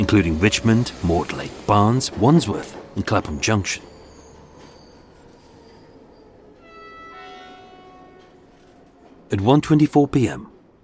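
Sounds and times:
speech: 0:00.0 - 0:03.9, 0:09.3 - 0:10.5
passenger train rolling along the rails: 0:00.0 - 0:10.8
high metallic train wheel squeals: 0:03.7 - 0:06.8.

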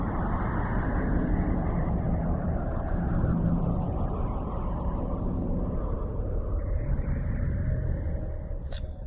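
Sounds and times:
eerie space-wave sonification music of a galaxy: 0:00.0 - 0:09.0.

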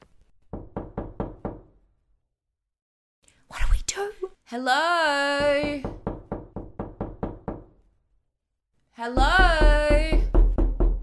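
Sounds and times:
firm knocking on a door: 0:00.5 - 0:01.8, 0:05.4 - 0:07.8, 0:09.2 - 0:11.0
speech: 0:04.0 - 0:06.0, 0:09.0 - 0:10.1.

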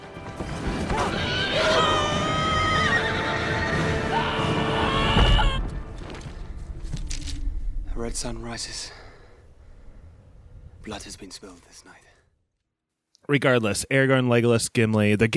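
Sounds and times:
horse whinnying: 0:00.9 - 0:05.6
rumbling busy background: 0:04.0 - 0:12.3
speech: 0:08.2 - 0:09.0, 0:10.8 - 0:12.1, 0:13.3 - 0:15.3.

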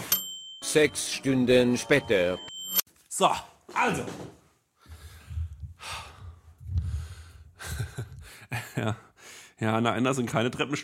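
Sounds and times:
speech: 0:00.7 - 0:02.5, 0:03.2 - 0:04.4, 0:08.8 - 0:10.8
person breathing heavily after running: 0:04.8 - 0:09.6
laughter: 0:07.6 - 0:09.0.

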